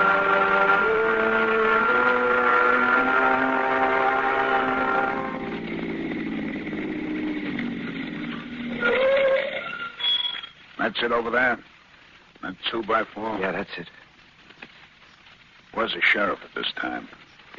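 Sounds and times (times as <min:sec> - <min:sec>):
car engine droning as a car drives along: 0:00.0 - 0:08.9
speech: 0:11.0 - 0:11.7, 0:12.5 - 0:14.0, 0:15.8 - 0:17.2.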